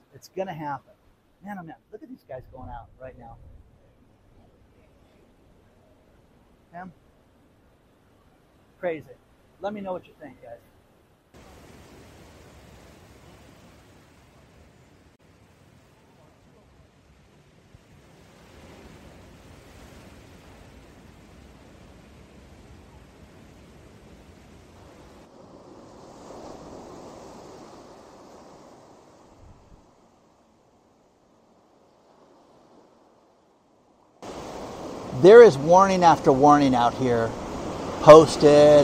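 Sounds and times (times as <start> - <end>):
speech: 0.2 - 3.6, 6.7 - 7.0, 8.8 - 10.7, 35.2 - 37.4, 38.0 - 38.8
rough ocean surf crashing: 11.4 - 38.8.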